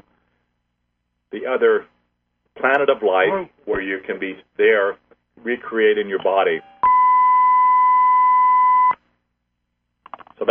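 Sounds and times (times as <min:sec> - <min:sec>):
speech: 0:01.4 - 0:01.9, 0:02.6 - 0:06.7
long steady electronic beep from incoming phone caller: 0:06.6 - 0:09.0.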